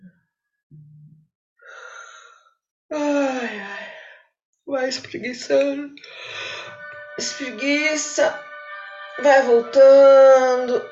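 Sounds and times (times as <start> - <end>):
single deep breath close to the microphone: 1.6 - 2.6, 6.0 - 6.8
speech: 4.7 - 6.4, 7.2 - 8.4, 9.2 - 10.9.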